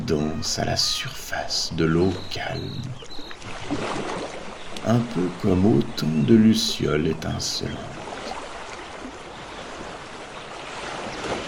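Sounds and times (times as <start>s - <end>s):
gentle ocean waves: 0.0s - 11.4s
speech: 0.1s - 3.1s, 3.7s - 4.1s, 4.8s - 8.0s.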